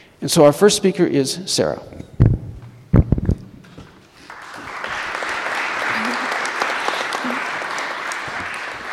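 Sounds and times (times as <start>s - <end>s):
speech: 0.2s - 2.2s
audience applauding as the first speaker is introduced: 4.2s - 8.9s.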